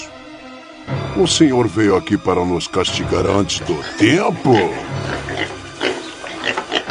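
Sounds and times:
speech: 0:01.2 - 0:05.6
many pigs grunting and oinking as they feed: 0:03.5 - 0:06.8.

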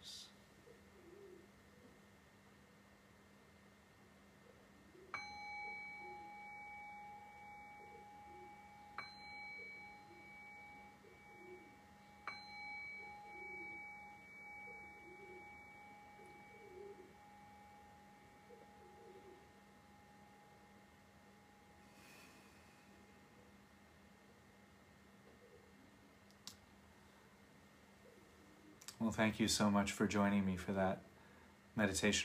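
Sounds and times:
steady hum: 0:00.0 - 0:32.2
meditation bell ringing: 0:05.1 - 0:23.4
speech: 0:29.0 - 0:31.1, 0:31.8 - 0:32.2.

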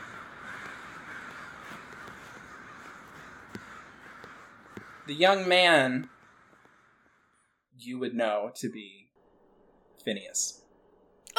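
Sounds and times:
chorus of crows cawing: 0:00.0 - 0:07.7
speech: 0:05.1 - 0:06.2, 0:07.8 - 0:09.0, 0:10.0 - 0:10.6.

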